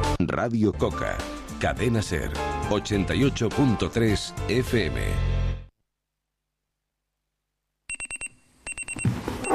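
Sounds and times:
speech: 0.2 - 5.3
alarm clock ringing in bright tonal beeps: 7.9 - 9.5.

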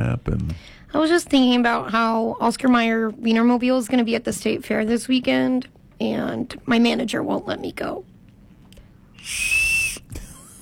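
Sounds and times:
speech: 0.2 - 8.1, 9.2 - 9.6
weenie whistle blown: 9.2 - 10.1.

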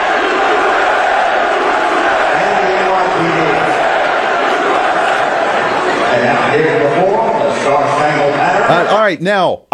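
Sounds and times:
large crowd roaring and shouting in a big indoor venue: 0.0 - 9.0
speech: 9.1 - 9.7.

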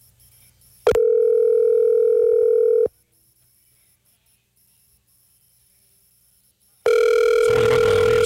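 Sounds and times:
ringback tone of an outgoing telephone call: 0.9 - 2.9, 6.9 - 8.2.

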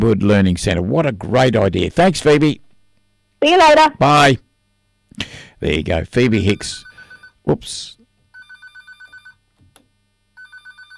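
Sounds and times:
speech: 0.0 - 2.6, 3.4 - 4.4, 5.2 - 8.0
phone ringing with an electronic trill: 6.4 - 7.4, 8.3 - 9.4, 10.4 - 10.9.

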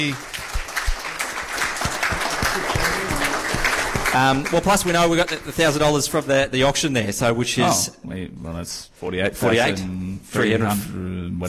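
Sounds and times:
speech: 0.0 - 0.3, 4.1 - 11.4
sharp individual claps: 0.0 - 5.8
crowd applauding at an evening fundraising event: 0.0 - 6.2.

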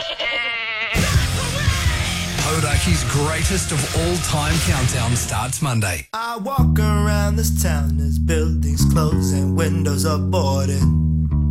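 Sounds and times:
goat bleating: 0.0 - 1.0
harsh noise: 1.0 - 5.7
speech: 2.8 - 11.0.

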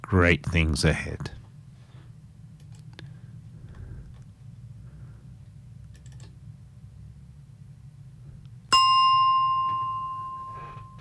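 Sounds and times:
low hum: 0.0 - 10.9
speech: 0.1 - 1.4
single bright bell strike ringing: 8.7 - 10.9.

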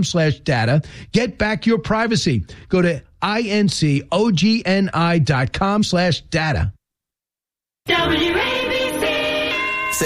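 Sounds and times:
speech: 0.0 - 6.8, 7.9 - 8.4
radio station time-check chime: 9.3 - 10.0.

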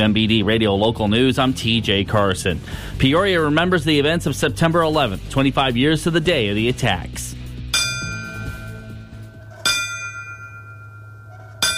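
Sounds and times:
speech: 0.0 - 7.4
resonant bell tolling at a 9/11 remembrance ceremony: 7.7 - 11.7.

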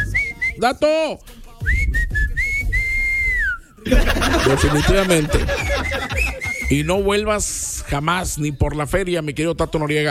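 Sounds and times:
person whistling a short tune: 0.0 - 0.7, 1.6 - 3.8, 5.5 - 7.0
speech: 0.6 - 1.9, 3.8 - 10.0
laughter: 3.8 - 6.8.

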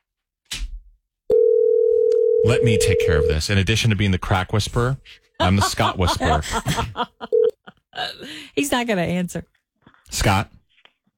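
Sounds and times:
telephone ringing tone while calling someone: 1.3 - 3.4
speech: 2.4 - 10.6
laughter: 5.4 - 8.2.

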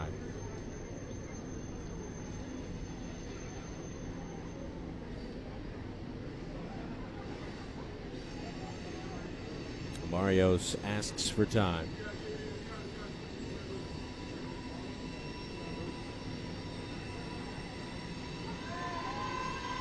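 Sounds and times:
train rolling past with metallic grinding: 0.0 - 19.8
speech: 10.2 - 12.1.

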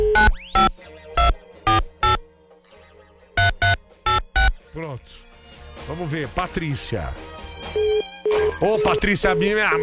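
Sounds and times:
telephone ringing after a call has been dialed: 0.2 - 2.2, 3.4 - 4.6
speech: 6.0 - 8.0, 8.6 - 9.8.

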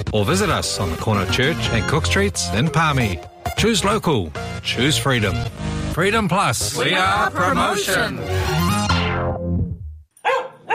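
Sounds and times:
speech: 0.0 - 8.7
dog barking: 10.2 - 10.7.

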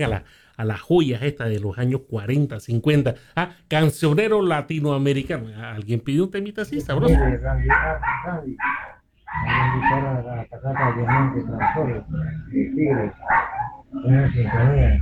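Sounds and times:
speech: 0.0 - 14.9
dog barking: 7.2 - 12.2, 12.9 - 14.8.

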